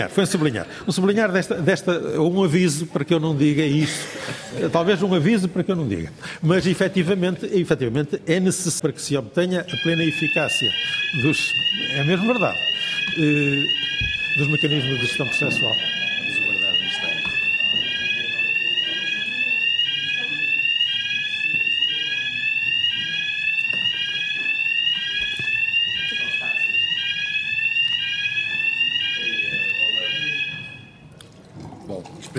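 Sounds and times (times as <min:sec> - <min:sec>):
faint voices murmuring: 0:00.0 - 0:07.2, 0:09.7 - 0:32.3
speech: 0:00.0 - 0:13.8, 0:14.4 - 0:16.0
laughter: 0:03.7 - 0:05.0
loud electronic fire alarm ringing: 0:09.6 - 0:31.1.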